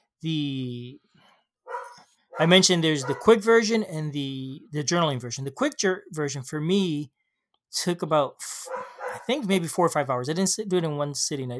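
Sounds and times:
speech: 0.2 - 1.0, 2.4 - 11.5
dog barking: 1.7 - 3.4, 8.7 - 9.3.

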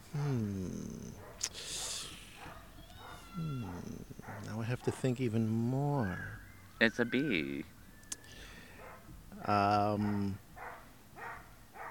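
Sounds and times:
dog barking: 1.2 - 5.2, 8.8 - 9.1, 9.9 - 11.8
speech: 4.7 - 7.7, 9.4 - 10.4.

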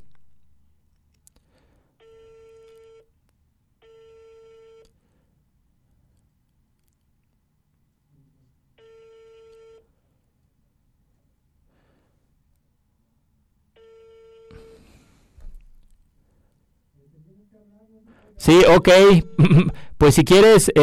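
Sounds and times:
telephone busy tone from a call attempt: 2.0 - 3.1, 3.8 - 4.9, 8.8 - 9.8, 13.8 - 14.9
speech: 18.0 - 20.8
laughter: 19.0 - 20.2.

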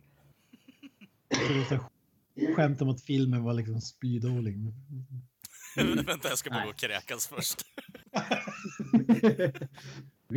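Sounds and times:
loud harsh coughing: 0.6 - 1.9, 5.5 - 8.0
soft throat-clearing grunts: 0.8 - 1.9
speech: 1.4 - 5.1, 5.8 - 10.3
laughter: 5.4 - 10.0.

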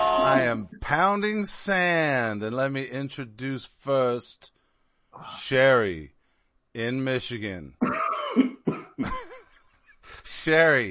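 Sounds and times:
speech: 0.3 - 4.6, 5.2 - 6.2, 6.8 - 9.3, 10.4 - 10.8
person coughing: 7.8 - 9.3.

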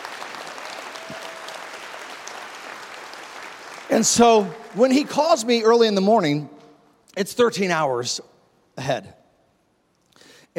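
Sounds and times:
audience applauding: 0.0 - 5.9
speech: 3.9 - 9.2.

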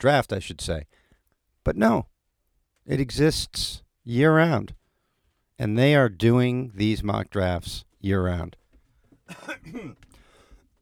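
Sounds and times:
speech: 0.0 - 1.0, 1.6 - 2.1, 2.9 - 4.8, 5.6 - 8.6, 9.3 - 10.0
harsh throaty cough: 9.3 - 10.0.

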